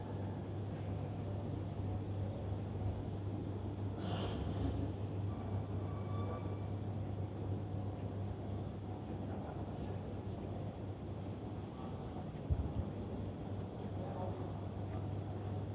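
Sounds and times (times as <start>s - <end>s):
cricket chirping: 0.0s - 15.7s.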